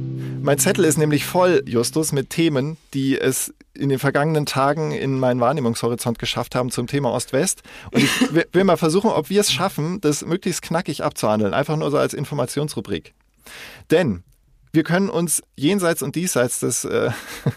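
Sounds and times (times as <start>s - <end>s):
fanfare jingle: 0.2s - 2.3s
speech: 0.5s - 17.5s
laughter: 7.9s - 8.5s, 17.1s - 17.5s.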